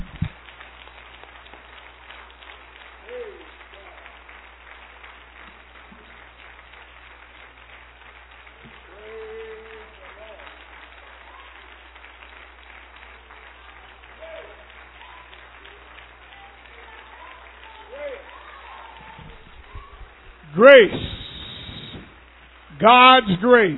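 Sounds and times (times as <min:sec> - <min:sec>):
audience clapping in praise: 0:00.0 - 0:23.7
louder calls from the audience: 0:08.9 - 0:10.4, 0:16.9 - 0:21.4
speech: 0:20.6 - 0:21.2, 0:22.8 - 0:23.7.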